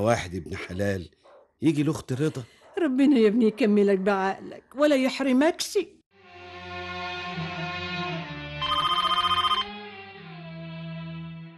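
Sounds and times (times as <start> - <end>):
speech: 0.0 - 6.0
telephone bell ringing: 8.6 - 9.7.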